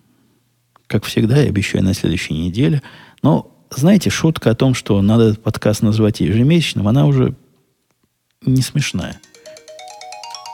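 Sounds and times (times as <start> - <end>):
speech: 0.9 - 7.4, 8.4 - 9.3
alarm clock ringtone chiming in bright electronic tones: 9.2 - 10.5.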